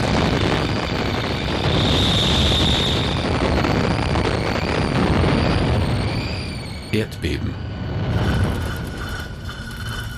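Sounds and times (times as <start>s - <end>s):
explosion sound effect with deep rumbling roar: 0.0s - 9.9s.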